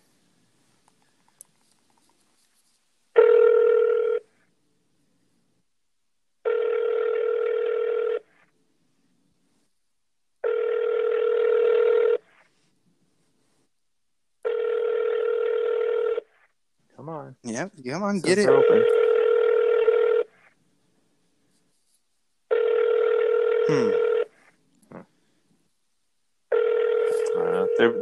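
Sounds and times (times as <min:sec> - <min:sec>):
ringback tones of an outgoing telephone call: 0:03.2 - 0:04.2, 0:06.5 - 0:08.2, 0:10.4 - 0:12.2, 0:14.5 - 0:16.2, 0:18.5 - 0:20.3, 0:22.5 - 0:24.3, 0:26.5 - 0:27.9
speech: 0:17.4 - 0:19.0.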